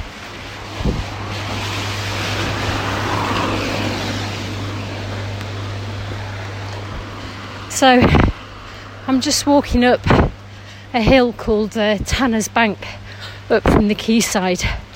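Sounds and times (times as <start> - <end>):
heavy rain pouring down outdoors: 0.0 - 9.0
gusty wind rumble: 0.0 - 12.8
speech: 7.8 - 8.3, 9.1 - 14.8.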